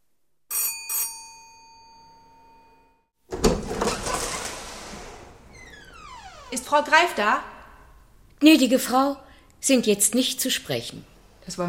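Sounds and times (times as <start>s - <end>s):
doorbell ringing with bright metallic strikes: 0.5s - 3.0s
speech: 6.5s - 7.5s, 8.4s - 11.6s.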